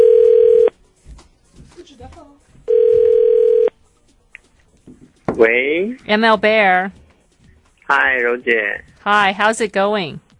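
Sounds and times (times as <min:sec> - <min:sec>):
outgoing telephone call ringback tones: 0:00.0 - 0:00.7, 0:02.7 - 0:03.8
speech: 0:05.4 - 0:07.0, 0:07.9 - 0:10.2.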